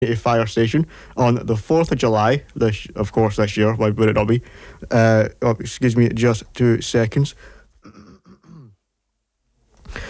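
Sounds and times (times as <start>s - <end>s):
speech: 0.0s - 7.6s
person clearing throat: 7.8s - 8.8s
person coughing harshly: 7.8s - 8.8s.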